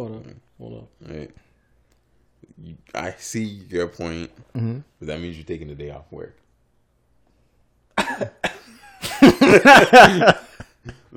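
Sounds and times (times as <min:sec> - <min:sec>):
speech: 0:02.6 - 0:06.4, 0:08.1 - 0:08.4, 0:09.5 - 0:11.1
harsh throaty coughing fit: 0:08.0 - 0:10.4.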